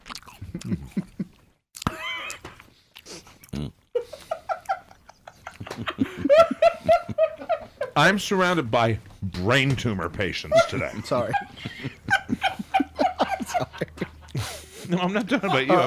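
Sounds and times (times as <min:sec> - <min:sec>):
crunchy chewing with wet bites: 0:00.0 - 0:03.7
speech: 0:00.5 - 0:01.0, 0:08.0 - 0:11.8, 0:15.0 - 0:15.8
laughter: 0:04.0 - 0:08.2, 0:10.3 - 0:15.8.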